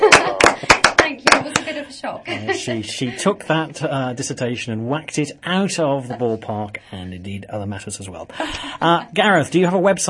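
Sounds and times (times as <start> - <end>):
round of applause in a studio: 0.0 - 1.8
speech: 2.0 - 10.0.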